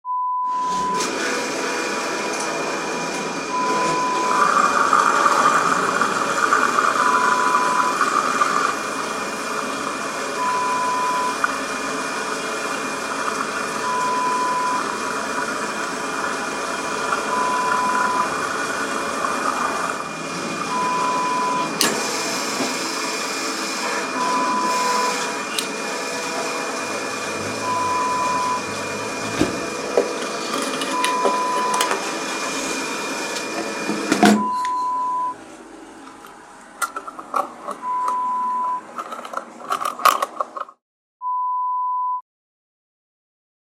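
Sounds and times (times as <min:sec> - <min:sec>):
gas station ambience: 0:00.0 - 0:42.2.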